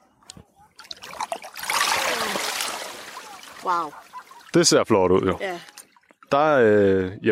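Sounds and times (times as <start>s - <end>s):
water splashing and streaming off a rope line with cultivated sugar kelp pulled from the sea: 0.7s - 6.6s
speech: 3.6s - 5.7s, 6.3s - 7.3s.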